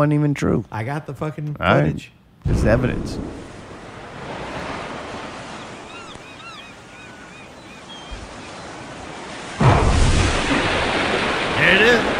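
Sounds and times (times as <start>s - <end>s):
speech: 0.0s - 3.4s
ocean surf: 2.5s - 12.1s
faint seagull cries: 5.1s - 9.0s.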